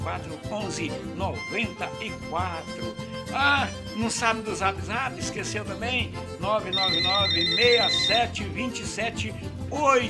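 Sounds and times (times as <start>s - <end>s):
speech: 0.1s - 10.0s
telephone ringing with a high electronic trill: 6.7s - 8.3s.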